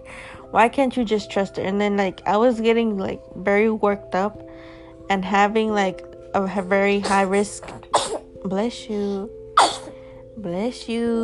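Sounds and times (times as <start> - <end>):
speech: 0.5 - 9.8, 10.4 - 11.2
single sharp sneeze: 7.9 - 8.3, 9.6 - 9.9.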